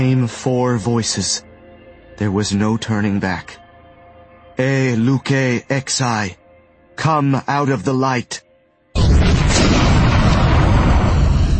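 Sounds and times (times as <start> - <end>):
speech: 0.0 - 1.5, 2.2 - 3.6, 4.6 - 6.4, 7.0 - 8.4
cataclysmic explosion blast roaring: 9.0 - 11.5.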